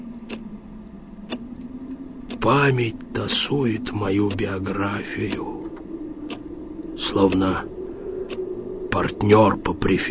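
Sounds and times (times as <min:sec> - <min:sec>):
steady low hum: 0:00.0 - 0:10.1
old pendulum wall clock ticking: 0:02.2 - 0:07.7
speech: 0:02.4 - 0:05.6, 0:07.0 - 0:07.7, 0:09.0 - 0:10.1.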